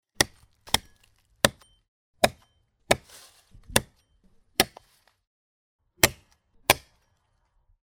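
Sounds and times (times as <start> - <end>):
chopping firewood: 0.1 - 5.2, 6.0 - 7.2.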